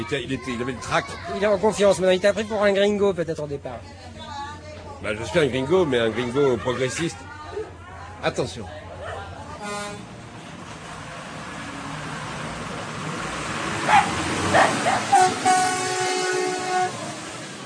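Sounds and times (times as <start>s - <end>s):
speech: 0.0s - 4.0s, 5.0s - 7.3s, 8.2s - 8.8s
train horn tooting: 9.6s - 10.1s, 15.1s - 17.4s
Labrador barking: 13.9s - 15.2s.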